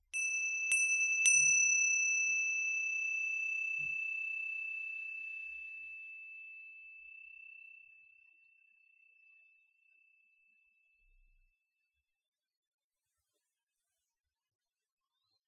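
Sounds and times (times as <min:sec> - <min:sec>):
bell struck with a clear bright ring: 0:00.2 - 0:05.7.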